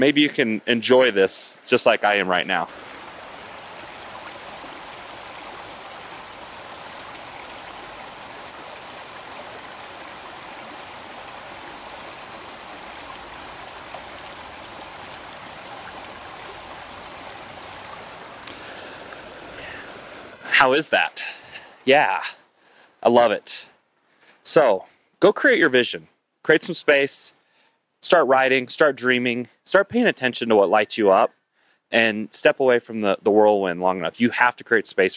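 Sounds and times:
speech: 0.0 - 2.9, 20.6 - 22.4, 23.0 - 23.7, 24.4 - 27.4, 28.0 - 35.1
running stream water rushing: 0.1 - 22.3.

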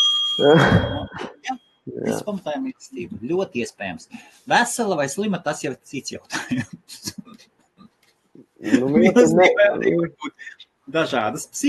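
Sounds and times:
small bell ringing: 0.0 - 1.8
speech: 0.4 - 7.2, 8.6 - 11.6
laughter: 6.3 - 7.4, 8.6 - 10.5.

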